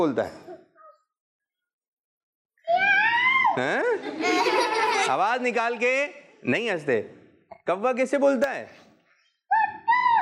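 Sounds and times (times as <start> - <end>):
speech: 0.0 - 0.4, 3.6 - 4.4, 5.1 - 8.8
laughter: 3.6 - 5.8
child imitating a cat meow: 9.5 - 10.1.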